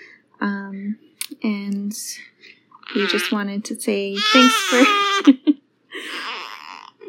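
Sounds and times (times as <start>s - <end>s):
speech: 0.4s - 2.3s, 2.9s - 5.5s
newborn baby boy fussing and crying: 2.8s - 3.4s, 4.2s - 5.4s, 6.0s - 7.0s
adult laughing: 4.8s - 6.4s.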